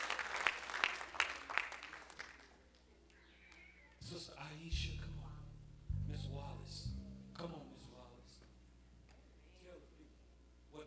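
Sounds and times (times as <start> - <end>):
crowd clapping hands in applause: 0.0 - 2.6
sustained low organ-like tones: 4.0 - 8.5.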